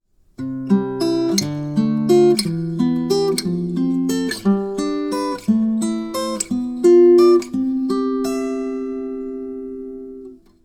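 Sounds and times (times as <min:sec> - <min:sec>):
guitar playing spread triad diatonic chords in C major: 0:00.4 - 0:10.6.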